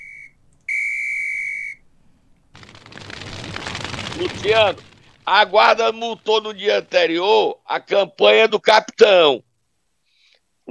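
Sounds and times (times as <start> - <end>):
whistle blown: 0.0 - 1.8
speech: 4.2 - 9.5.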